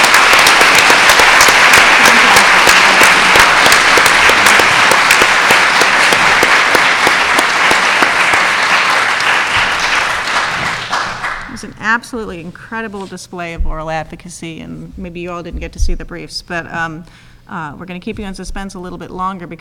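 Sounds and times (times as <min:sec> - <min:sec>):
sustained applause from a large audience: 0:00.0 - 0:11.6
speech: 0:11.9 - 0:19.5.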